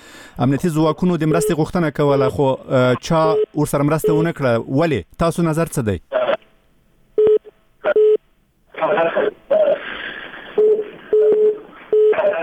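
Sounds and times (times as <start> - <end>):
speech: 0.4 - 6.2, 8.8 - 9.8
harsh crackling garbled telephone line noise: 0.4 - 6.6, 8.7 - 12.4
telephone line beeping tones from a failed phone connection: 1.3 - 1.6, 2.9 - 4.3, 7.2 - 8.2, 10.6 - 12.4.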